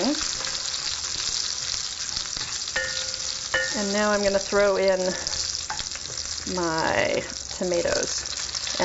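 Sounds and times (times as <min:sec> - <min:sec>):
spoon scraping a pan while stirring: 0:00.0 - 0:04.5, 0:05.1 - 0:06.4
garlic and spices frying in a pan over lowered heat: 0:00.0 - 0:08.8
speech: 0:03.8 - 0:05.4, 0:06.5 - 0:08.8.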